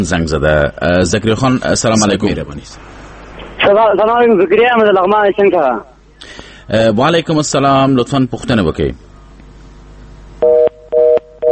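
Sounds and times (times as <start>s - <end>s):
speech: 0.0s - 3.0s, 3.7s - 9.1s
disconnected phone line tone beeps after a call-in program call drops: 10.4s - 11.5s.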